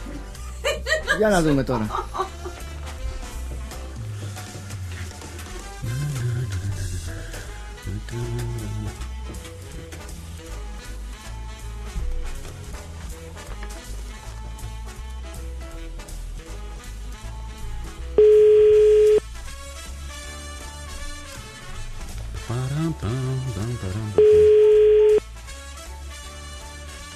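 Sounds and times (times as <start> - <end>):
music: 0.0 - 27.1
laughter: 0.5 - 2.7
speech: 1.2 - 2.1
telephone busy signal beeps from a call to a busy number: 18.2 - 19.2, 24.2 - 25.2.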